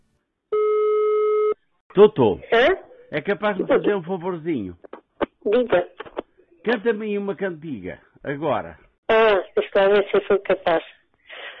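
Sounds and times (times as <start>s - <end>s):
steady telephone ringing tone of a call being placed: 0.6s - 1.6s
speech: 2.0s - 10.9s.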